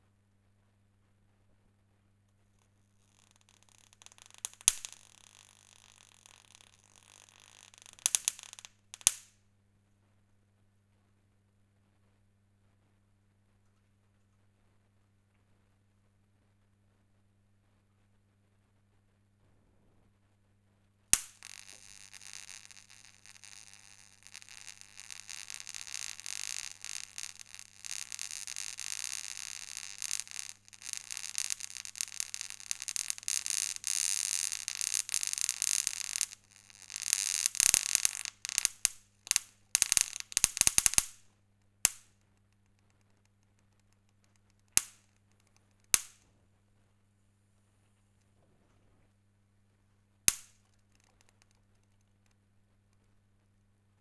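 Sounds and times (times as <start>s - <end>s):
insect burning: 3.0s - 9.3s, 21.2s - 41.2s, 41.9s - 42.1s, 44.7s - 46.2s, 50.3s - 51.5s.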